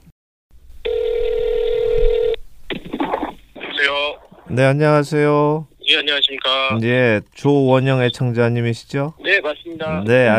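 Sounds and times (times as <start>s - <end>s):
steady electronic telephone tone: 0.9s - 2.4s
speech: 3.8s - 10.3s.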